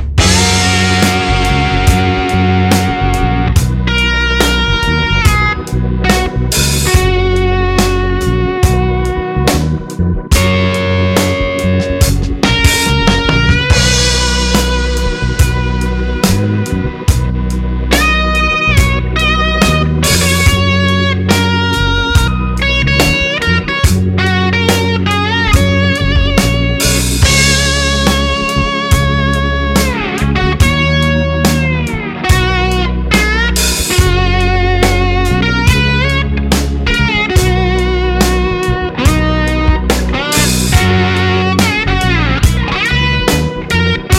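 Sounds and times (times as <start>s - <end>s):
slide guitar solo: 0.2s - 44.1s.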